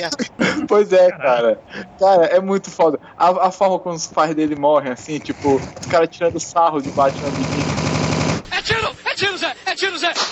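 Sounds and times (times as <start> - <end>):
excited voices talking and shouting: 0.0 - 7.7, 8.5 - 10.3
speech: 0.0 - 7.8
rapid automatic gunfire: 7.2 - 8.5.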